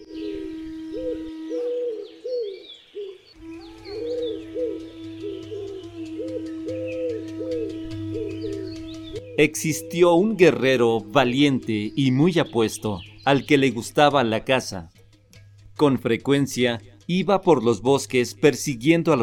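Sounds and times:
constant low hum: 0.0 - 2.6, 3.4 - 13.8
dove cooing: 0.0 - 13.2
faint bird chirps: 0.0 - 13.5
speech: 9.4 - 15.0, 15.8 - 19.2.

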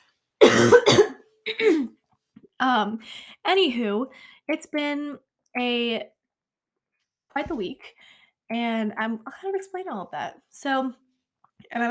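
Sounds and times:
person with COVID coughing harshly: 0.4 - 2.0
speech: 2.6 - 6.2, 7.4 - 11.0, 11.6 - 11.8.

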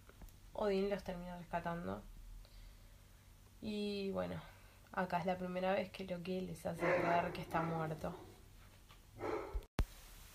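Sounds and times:
speech: 0.6 - 2.1, 3.6 - 8.3
dog barking: 6.8 - 8.4, 9.2 - 9.7.

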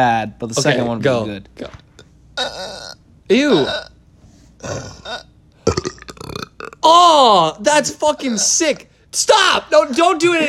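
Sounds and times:
speech: 0.0 - 1.8, 2.4 - 3.9, 4.6 - 10.4
loud burps on command: 2.4 - 4.0, 4.6 - 6.9.

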